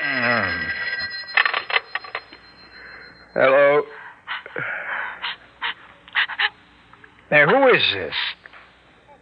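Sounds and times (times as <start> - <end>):
telephone ringing with trilling bell bursts: 0.0 - 3.8
speech: 7.8 - 8.4.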